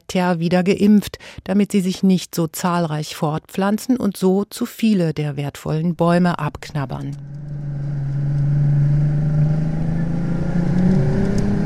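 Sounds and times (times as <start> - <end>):
speech: 0.1 - 7.6
motorboat engine speeding along a wide straight canal in the Danube Delta: 6.9 - 11.6.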